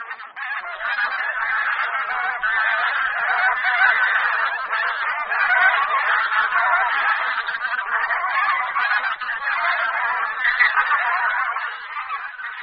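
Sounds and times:
flock of bean geese honking: 0:00.0 - 0:12.6.

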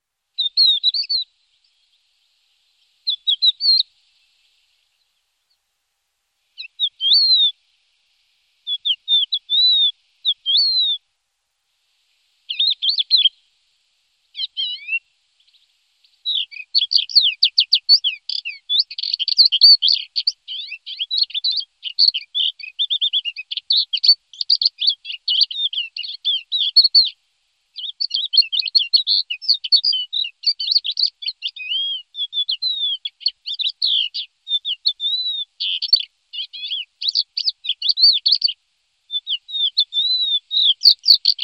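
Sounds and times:
cedar waxwing calling: 0:00.4 - 0:01.3, 0:03.0 - 0:03.9, 0:06.6 - 0:07.6, 0:08.7 - 0:11.0, 0:12.5 - 0:13.4, 0:14.4 - 0:27.2, 0:27.8 - 0:41.4.

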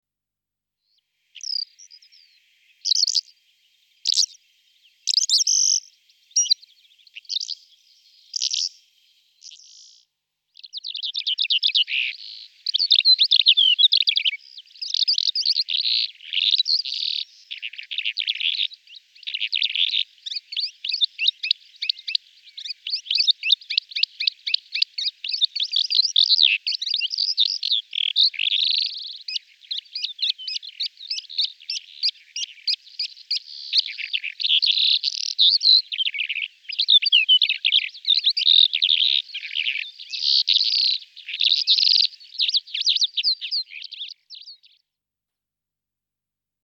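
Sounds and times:
Melanocorypha calandra singing: 0:01.4 - 0:03.4, 0:04.0 - 0:44.8.

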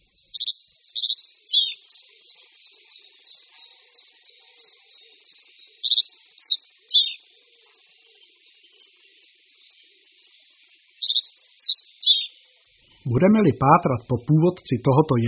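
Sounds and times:
reed bunting singing short simple three-note phrases: 0:00.0 - 0:04.6, 0:05.6 - 0:07.3, 0:10.8 - 0:12.4, 0:13.0 - 0:15.2
faint soft twittering: 0:00.0 - 0:13.1
speech: 0:13.1 - 0:15.2.

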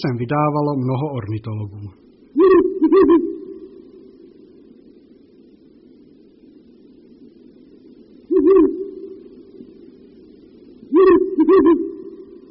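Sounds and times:
speech: 0:00.0 - 0:03.4
low steady hum: 0:00.0 - 0:12.4
Ural owl hooting: 0:02.2 - 0:04.7, 0:08.2 - 0:12.4.

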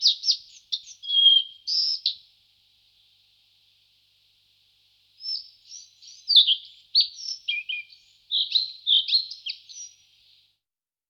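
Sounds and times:
Collared flycatcher Ficedula albicollis singing high squeaky whistled notes: 0:00.0 - 0:02.2, 0:05.2 - 0:10.0.

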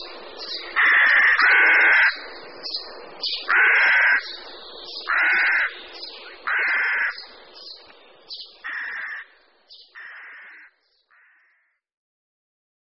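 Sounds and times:
rook calling with rasping hoarse caws: 0:00.7 - 0:02.3, 0:03.4 - 0:04.4, 0:05.0 - 0:07.3, 0:08.6 - 0:11.8.

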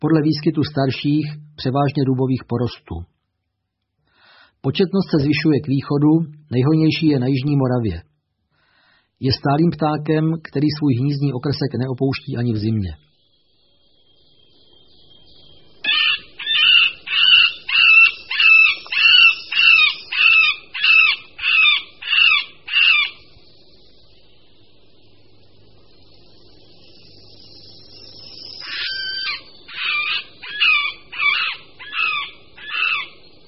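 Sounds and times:
speech: 0:00.0 - 0:03.2, 0:04.6 - 0:08.1, 0:09.2 - 0:13.1
middle spotted woodpecker giving nasal mewing calls: 0:15.8 - 0:23.4, 0:28.4 - 0:33.2.

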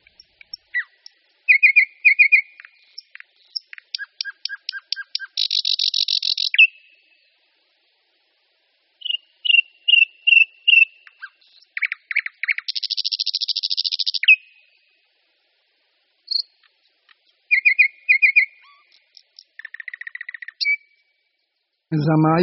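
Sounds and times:
thrush nightingale singing: 0:00.0 - 0:07.3, 0:09.0 - 0:14.8, 0:16.3 - 0:21.2
speech: 0:22.0 - 0:22.4.

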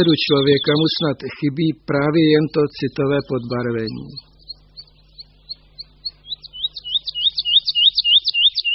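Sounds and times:
speech: 0:00.0 - 0:04.3
faint low hum: 0:00.0 - 0:08.7
songbird singing: 0:00.0 - 0:08.7.

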